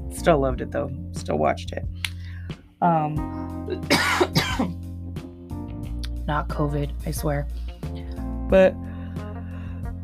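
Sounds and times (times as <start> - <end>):
speech: 0.1 - 4.8, 6.3 - 7.6, 8.5 - 8.9
harsh raspy coughs: 3.8 - 4.8.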